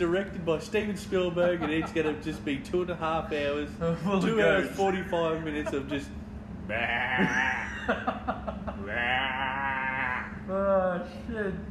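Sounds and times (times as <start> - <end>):
speech: 0.0 - 9.8, 10.5 - 11.7
laughter: 1.1 - 2.6, 4.2 - 6.0, 7.0 - 10.2
person imitating a goat bleating: 6.7 - 7.6, 8.8 - 10.4.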